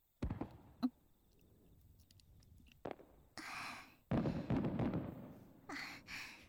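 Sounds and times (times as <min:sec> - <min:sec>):
fireworks bursting in the night sky: 0:00.2 - 0:00.8, 0:02.8 - 0:03.3, 0:04.1 - 0:05.7.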